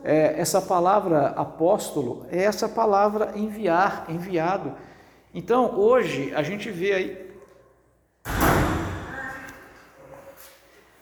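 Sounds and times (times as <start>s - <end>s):
speech: 0.0s - 7.2s
door slamming shut from the wind: 8.2s - 9.5s.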